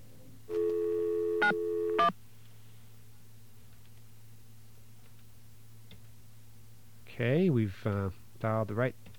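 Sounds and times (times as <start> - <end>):
telephone line tone as a number is dialed: 0.5 - 2.1
speech: 7.2 - 9.1.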